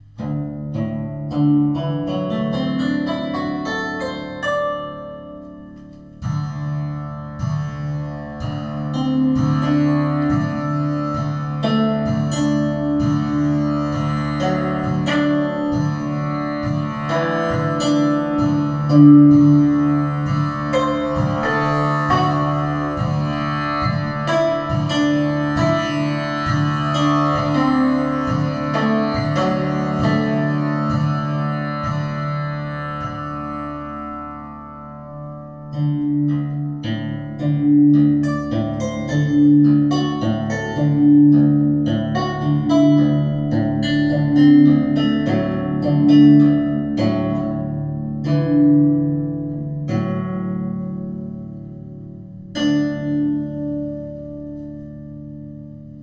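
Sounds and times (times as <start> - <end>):
anhemitonic pentatonic melody: 0.0 - 56.0.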